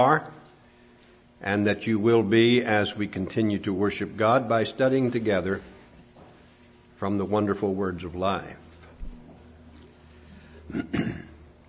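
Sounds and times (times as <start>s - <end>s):
speech: 0.0s - 0.4s, 1.4s - 5.7s, 7.0s - 8.6s, 10.7s - 11.3s
ill person clearing throat during a church worship service: 10.6s - 11.6s.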